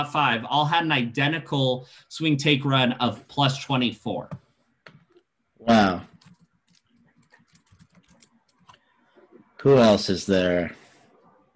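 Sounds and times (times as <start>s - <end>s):
speech: 0.0s - 4.4s, 5.6s - 6.1s, 9.6s - 10.8s
fingers typing on a computer keyboard: 6.1s - 8.8s.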